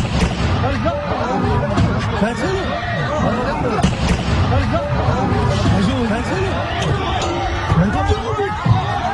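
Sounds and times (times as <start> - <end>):
gunshots in a street: 0.0 - 0.9, 3.8 - 6.1
agitated crowd shouting and chattering in a street: 0.0 - 9.1
laughter: 0.7 - 9.1.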